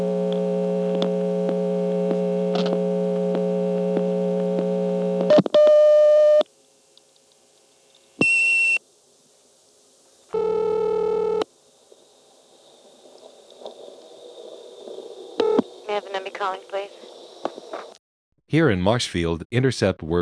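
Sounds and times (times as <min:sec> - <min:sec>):
faint telephone line noise: 0:00.0 - 0:18.0
telephone line tones while dialing on an old step-by-step exchange: 0:10.4 - 0:11.4
speech: 0:16.4 - 0:17.0, 0:18.5 - 0:20.2.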